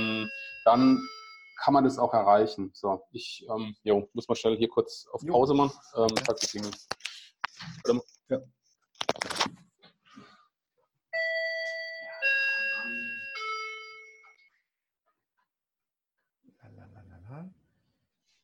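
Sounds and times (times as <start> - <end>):
electronic doorbell chiming two tones: 0.0 - 1.6, 11.2 - 14.6
speech: 0.7 - 7.0, 7.6 - 8.6.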